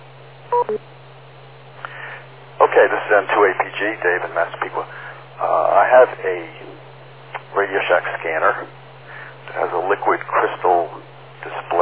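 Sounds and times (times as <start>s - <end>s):
steady low hum: 0.0s - 11.8s
electronic telephone beeps on a radio call-in line: 0.5s - 0.8s
speech: 0.6s - 1.0s, 2.8s - 6.7s, 7.6s - 8.8s, 9.5s - 11.8s.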